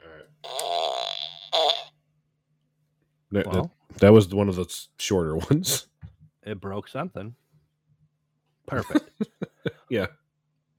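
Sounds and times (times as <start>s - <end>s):
synthetic fart sound effect from a fart machine: 0.4s - 2.0s
speech: 3.3s - 7.4s, 8.7s - 10.2s.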